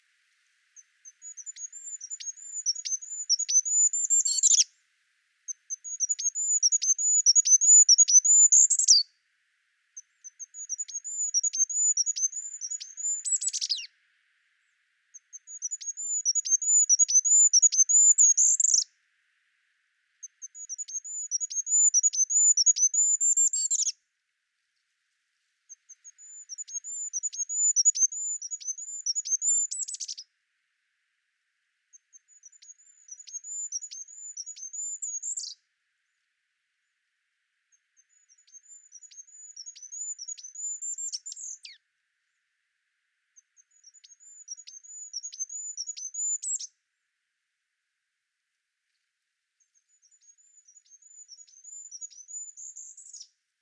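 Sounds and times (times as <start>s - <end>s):
goldcrest calling: 0.0s - 4.7s, 5.5s - 9.1s, 9.9s - 24.0s, 25.6s - 30.3s, 31.9s - 35.6s, 37.6s - 41.8s, 43.3s - 46.7s, 49.7s - 53.3s.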